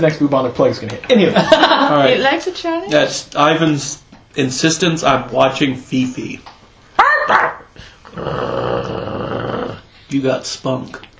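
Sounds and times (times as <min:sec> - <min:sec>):
speech: 0:00.0 - 0:06.5, 0:08.2 - 0:08.7, 0:10.1 - 0:11.1
laughter: 0:01.1 - 0:02.2
dog barking sharply: 0:07.0 - 0:07.7
dog growling low and rough: 0:08.1 - 0:09.9.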